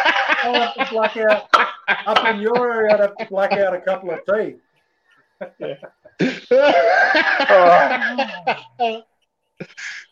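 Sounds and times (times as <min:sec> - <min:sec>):
person laughing and coughing: 0:00.0 - 0:04.3, 0:05.6 - 0:09.0
speech: 0:00.4 - 0:04.6, 0:05.4 - 0:10.0
sharp coughs: 0:01.3 - 0:03.7.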